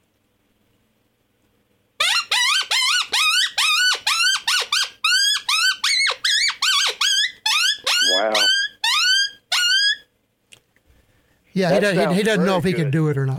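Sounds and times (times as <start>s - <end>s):
hand call imitating a distressed pup, yelping and squealing: 2.0s - 10.1s
speech: 11.6s - 13.3s.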